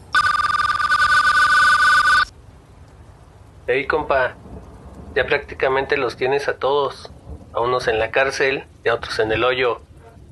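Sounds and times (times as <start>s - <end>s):
telephone ringing with an incoming call, electronic warbling ringtone: 0.0s - 2.3s
speech: 3.7s - 4.4s, 5.2s - 9.9s.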